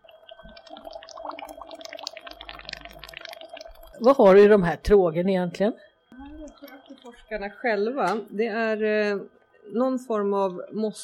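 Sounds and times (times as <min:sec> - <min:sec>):
water bubbling and hissing in tubs: 0:00.0 - 0:04.4
small water gurgles and drips: 0:00.0 - 0:04.9, 0:06.2 - 0:07.8
speech: 0:04.0 - 0:05.9, 0:07.2 - 0:11.0.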